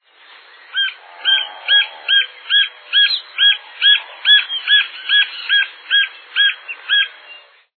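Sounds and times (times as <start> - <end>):
green-barred woodpecker: 0.7 - 7.4.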